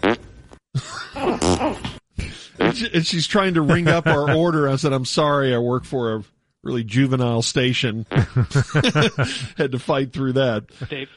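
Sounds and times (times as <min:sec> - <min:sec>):
fart sound-effect drops played on a golf course: 0:00.0 - 0:00.4, 0:01.2 - 0:02.0, 0:02.6 - 0:02.9
speech: 0:02.8 - 0:11.1
laughter: 0:03.6 - 0:04.7, 0:08.2 - 0:09.8.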